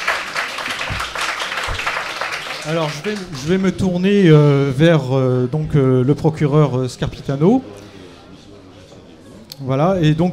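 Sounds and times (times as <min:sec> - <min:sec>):
audience applause at a public book presentation and talk: 0:00.0 - 0:03.8
speech: 0:02.6 - 0:07.8, 0:09.6 - 0:10.3.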